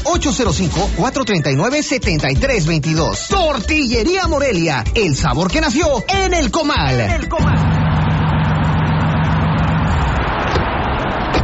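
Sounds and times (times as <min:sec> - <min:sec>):
speech: 0:00.1 - 0:07.7
engine of a newly bought car droning with a low humming tone: 0:07.4 - 0:11.4.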